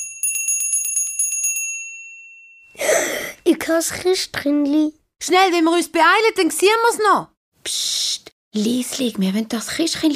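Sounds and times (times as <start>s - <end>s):
small bell ringing: 0.0s - 2.8s
speech: 2.8s - 10.1s.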